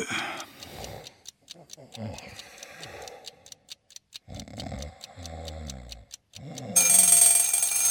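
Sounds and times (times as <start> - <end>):
mechanical clock ticking: 0.0 - 7.8
speech: 2.0 - 2.5
mechanical bell alarm clock ringing: 6.8 - 7.8.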